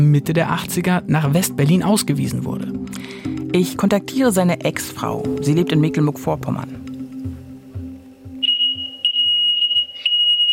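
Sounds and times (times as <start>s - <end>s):
speech: 0.0s - 6.8s
low hum: 5.0s - 7.0s
loud shrill smoke alarm beeping: 8.4s - 10.5s.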